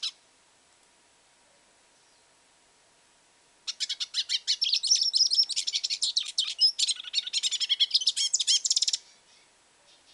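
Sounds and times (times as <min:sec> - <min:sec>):
hooded siskin song with fast high chirps and buzzy twitters: 0:03.7 - 0:10.1.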